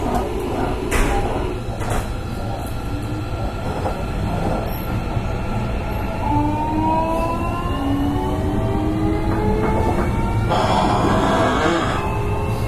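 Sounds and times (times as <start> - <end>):
JR Kyushu 305 series electric train running: 0.0 - 12.6.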